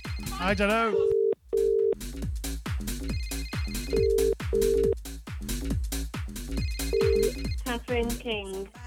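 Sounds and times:
steady rhythmic music bed: 0.0s - 8.8s
speech: 0.4s - 1.1s
outgoing phone call ringback tones: 1.0s - 2.0s, 3.8s - 5.0s, 6.9s - 7.4s.

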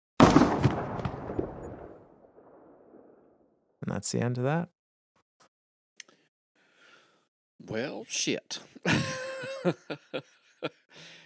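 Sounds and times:
loud gunshot from a heavy hand cannon: 0.2s - 2.1s
speech: 4.0s - 4.8s, 7.6s - 11.2s
laughter: 8.6s - 10.9s.

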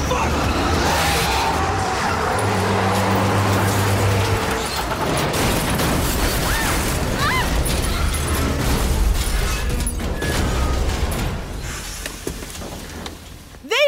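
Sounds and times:
truck tires squealing while swerving: 0.0s - 5.2s
truck engine roaring on a highway: 0.0s - 11.2s
truck crashing and rolling over: 0.0s - 13.0s.

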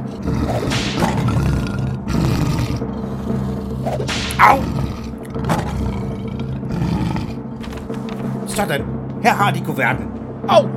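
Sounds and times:
circus lion roaring: 0.1s - 3.8s, 4.5s - 7.5s
speech: 4.4s - 4.8s, 8.6s - 10.7s.

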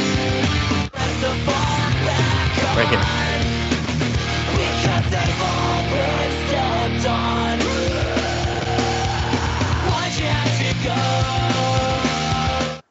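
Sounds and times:
heavy distorted guitars: 1.2s - 12.8s
speech: 2.8s - 3.2s
harsh screamed vocals in a rock song: 2.8s - 3.4s, 7.6s - 10.0s.

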